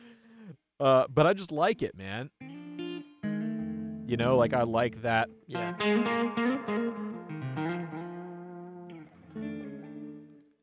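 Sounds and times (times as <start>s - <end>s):
speech: 0.8s - 2.4s, 4.1s - 7.0s
electric guitar chords through an amp with short room reverb: 2.4s - 10.6s.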